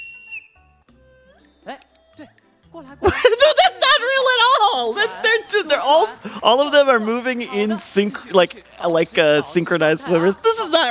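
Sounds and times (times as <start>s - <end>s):
shrill whistle blown by ringmaster: 0.0s - 0.8s
speech: 1.6s - 10.9s
laughter: 3.0s - 10.9s.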